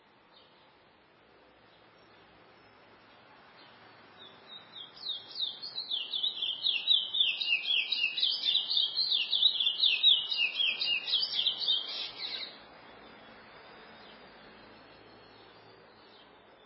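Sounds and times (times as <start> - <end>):
light hiss of background noise: 0.0 - 16.6
chestnut-bellied seed finch twittering song: 3.6 - 16.6.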